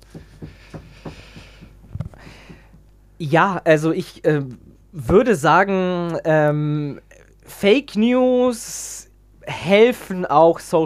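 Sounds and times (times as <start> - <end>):
low knocking thuds: 0.0 - 2.8
speech: 3.2 - 10.8.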